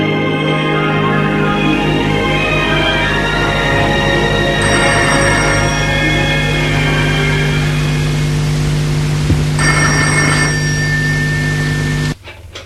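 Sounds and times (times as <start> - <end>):
steady low hum: 0.2 - 12.2
telephone bell ringing: 4.5 - 8.1, 9.6 - 12.2.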